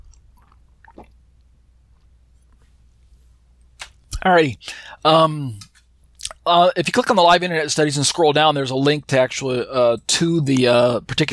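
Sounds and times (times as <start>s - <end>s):
person gulping water: 0.0s - 1.2s
person sipping water: 0.0s - 1.2s
wet mouth clicks: 0.0s - 1.2s
low steady hum: 0.0s - 11.3s
speech: 4.2s - 5.7s, 6.4s - 11.3s.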